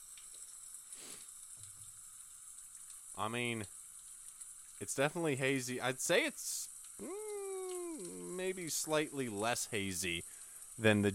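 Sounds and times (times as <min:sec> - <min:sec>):
speech: 0:03.2 - 0:03.8, 0:04.8 - 0:07.2, 0:08.0 - 0:10.2, 0:10.8 - 0:11.1
low gurgle: 0:06.8 - 0:11.0
beer pouring into a glass: 0:07.0 - 0:10.2.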